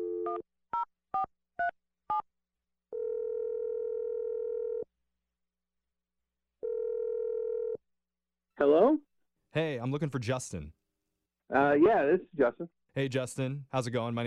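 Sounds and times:
speech: 0.3 - 0.9, 8.6 - 10.8, 11.5 - 14.2
telephone ringback tones: 2.9 - 4.8, 6.6 - 7.8.

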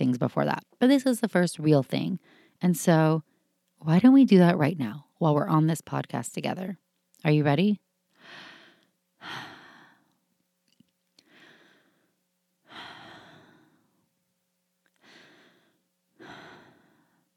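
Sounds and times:
speech: 0.1 - 8.4
slow deep human breaths: 2.2 - 2.6, 8.1 - 10.2, 11.2 - 14.1, 14.9 - 17.3.

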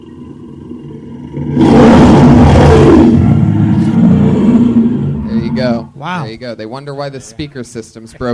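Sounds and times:
bear roaring: 0.0 - 6.0
low rumble: 0.0 - 6.0
speech: 6.2 - 8.3.

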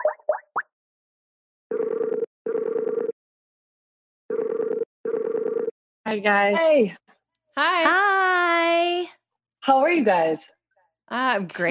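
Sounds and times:
phone call ringing tone as guests are dialed into a call: 1.7 - 3.2, 4.3 - 5.8
speech: 6.1 - 7.0, 7.6 - 11.6.

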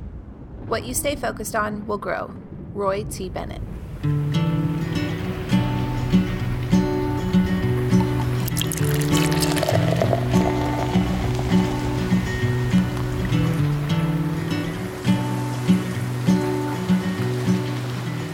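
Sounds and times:
speech: 0.7 - 4.4
soft rhythmic music: 4.4 - 18.3
coffee pouring into a cup: 8.0 - 13.0.

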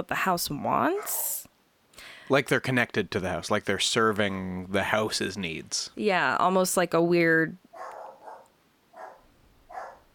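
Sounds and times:
speech: 0.0 - 1.5, 2.3 - 7.6
dog barking: 7.7 - 10.1.

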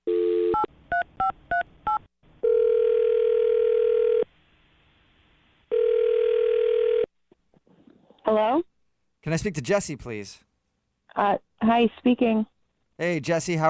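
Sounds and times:
telephone ringing tones: 0.1 - 4.3, 5.7 - 7.1
speech: 9.3 - 10.5, 11.2 - 13.6.

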